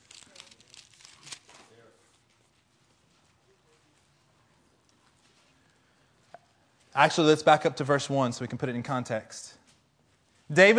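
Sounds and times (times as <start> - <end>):
Bible pages being turned: 0.0 - 3.4
speech: 7.0 - 9.6, 10.5 - 10.7.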